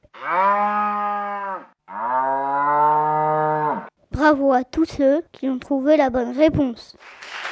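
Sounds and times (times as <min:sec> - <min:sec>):
cow mooing: 0:00.1 - 0:03.9
speech: 0:04.2 - 0:07.3.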